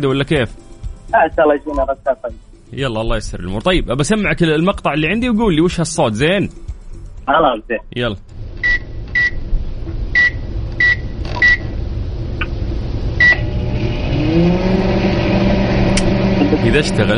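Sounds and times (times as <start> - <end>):
speech: 0.0 - 8.4, 16.6 - 17.1
microwave oven humming: 8.3 - 17.1
short sharp electronic beeps: 10.2 - 11.7.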